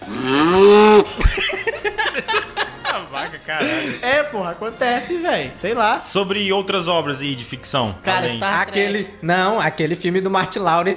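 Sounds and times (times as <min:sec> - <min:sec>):
cow mooing: 0:00.0 - 0:01.1
people laughing: 0:01.1 - 0:04.0
speech: 0:03.5 - 0:10.9.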